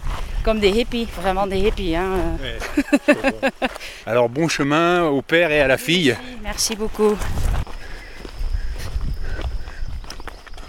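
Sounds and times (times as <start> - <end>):
low rumble of wind: 0.0 - 2.9, 6.4 - 10.6
footsteps crunching on a hiking trail: 0.0 - 10.6
speech: 0.4 - 7.5
laughter: 2.6 - 3.8.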